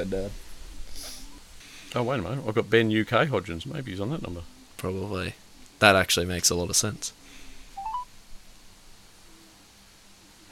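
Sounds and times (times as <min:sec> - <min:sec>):
speech: 0:00.0 - 0:01.1, 0:01.9 - 0:07.2
steady electronic telephone engaged tone: 0:07.8 - 0:08.0
telephone dialing beeps: 0:07.8 - 0:08.1.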